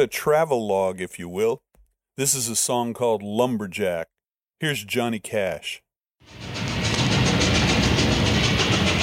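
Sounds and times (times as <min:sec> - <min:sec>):
speech: 0:00.0 - 0:06.6
train rolling on tracks on a late-1950s record: 0:06.3 - 0:09.0.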